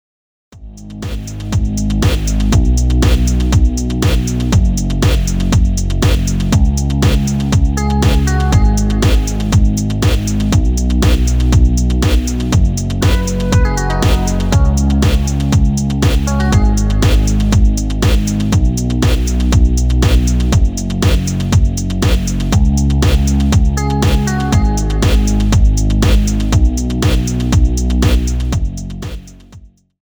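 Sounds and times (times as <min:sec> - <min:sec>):
remix music: 0:01.0 - 0:29.4.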